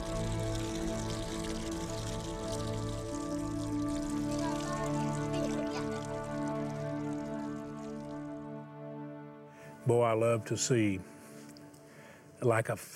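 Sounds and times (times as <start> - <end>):
small stream of water pouring and splashing: 0.0 - 8.5
speech: 9.9 - 11.2, 12.4 - 12.9.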